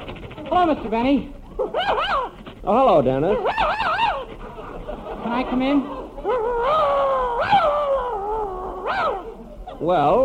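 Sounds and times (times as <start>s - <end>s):
dog barking and howling: 0.2s - 2.6s, 3.2s - 5.2s, 6.0s - 10.2s
speech: 0.5s - 3.8s, 5.2s - 7.6s, 9.8s - 10.2s
laughter: 3.2s - 8.2s.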